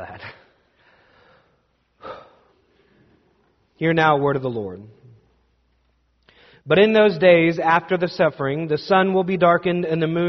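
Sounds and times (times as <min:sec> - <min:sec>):
speech: 0:00.0 - 0:00.4, 0:03.8 - 0:05.0, 0:06.6 - 0:10.2
deep breath taken during a church sermon: 0:00.6 - 0:03.2, 0:06.2 - 0:06.7.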